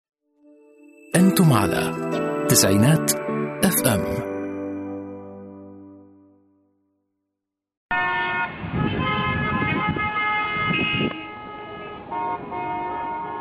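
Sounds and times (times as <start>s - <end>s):
speech: 1.2s - 4.3s
car horns honking in a traffic jam: 7.9s - 13.4s
dense din of a traffic jam: 7.9s - 13.4s.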